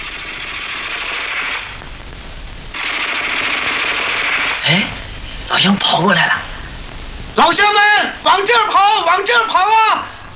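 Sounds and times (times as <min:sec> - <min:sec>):
Type 11 light machine gun firing in bursts: 0:00.0 - 0:06.9
speech: 0:05.6 - 0:06.4, 0:07.4 - 0:10.1.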